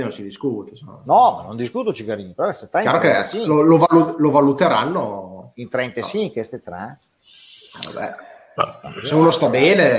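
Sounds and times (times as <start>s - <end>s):
speech: 0.0s - 7.1s, 7.8s - 9.9s
short low burp: 8.6s - 9.1s.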